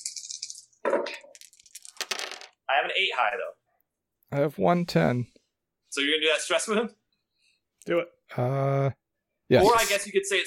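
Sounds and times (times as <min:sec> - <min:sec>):
four dice rattling and clattering across a hard surface: 0:00.0 - 0:02.6
speech: 0:02.7 - 0:03.6, 0:04.3 - 0:07.0, 0:07.8 - 0:10.4.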